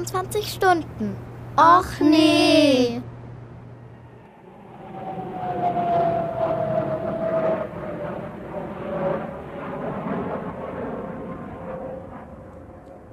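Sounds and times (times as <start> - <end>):
speech: 0.0 - 3.1
airplane jet-engine roar with high whine descending and landing in Tokyo: 3.4 - 13.1.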